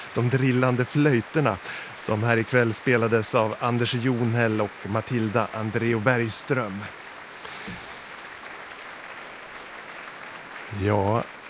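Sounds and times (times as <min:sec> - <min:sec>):
laughter: 0:00.0 - 0:08.0, 0:10.8 - 0:11.2
large audience applauding in a concert hall after a symphony performance: 0:00.0 - 0:11.4
speech: 0:00.2 - 0:07.0, 0:07.6 - 0:07.9, 0:10.7 - 0:11.3.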